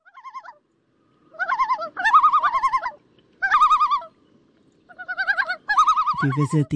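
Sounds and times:
common loon calling in quavering tremolo phrases: 0.0 - 0.6, 1.3 - 4.2, 4.9 - 6.7
speech: 6.2 - 6.7.

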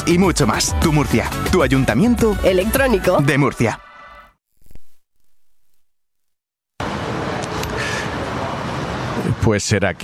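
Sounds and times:
speech: 0.0 - 3.9, 9.5 - 10.0
dense city street traffic in central Madrid: 6.8 - 10.0.

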